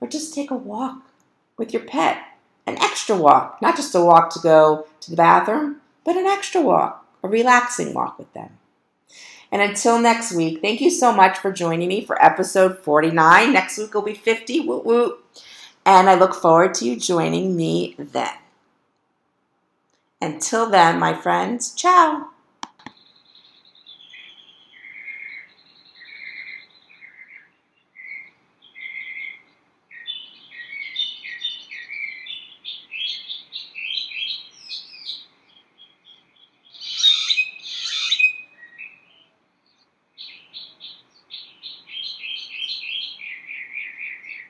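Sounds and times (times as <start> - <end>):
speech: 0.1 - 18.4, 20.2 - 22.3
birds chirping and singing outdoors in Scottsdale Arizona: 23.0 - 44.4.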